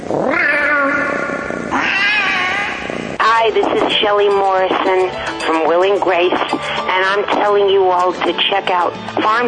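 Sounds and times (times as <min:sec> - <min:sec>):
cat caterwauling: 0:00.1 - 0:03.2
speech: 0:04.1 - 0:09.4.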